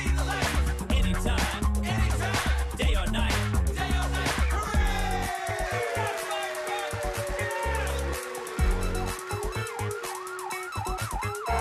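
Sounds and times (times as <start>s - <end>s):
thumping musical beat: 0.0s - 11.5s
fire truck siren wailing: 5.2s - 11.5s.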